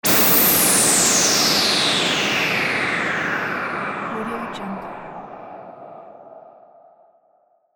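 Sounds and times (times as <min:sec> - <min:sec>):
ghostly white noise burst: 0:00.1 - 0:06.3.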